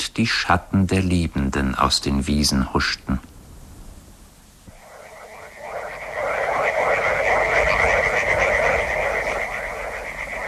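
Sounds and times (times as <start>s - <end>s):
speech: 0.2s - 3.3s
frogs croaking in backwaters: 4.7s - 10.4s.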